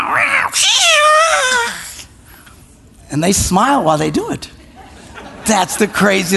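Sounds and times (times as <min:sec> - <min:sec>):
cat meowing: 0:00.0 - 0:01.9
speech: 0:00.5 - 0:01.0, 0:03.1 - 0:04.5, 0:05.5 - 0:06.3
laughter: 0:04.6 - 0:06.3.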